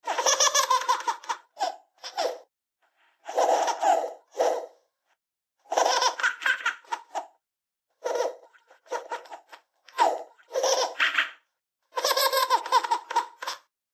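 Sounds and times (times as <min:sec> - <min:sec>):
baby laughing: 0:00.0 - 0:02.5, 0:03.3 - 0:04.8, 0:05.7 - 0:07.4, 0:08.0 - 0:11.4, 0:12.0 - 0:13.7.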